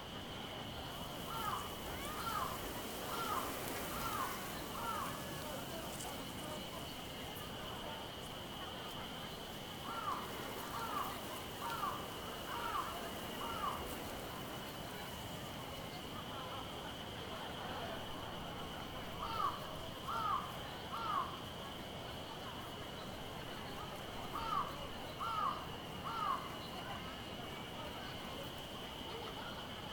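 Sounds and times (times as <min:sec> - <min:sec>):
outdoor event plaza chatter: 0:00.0 - 0:29.9.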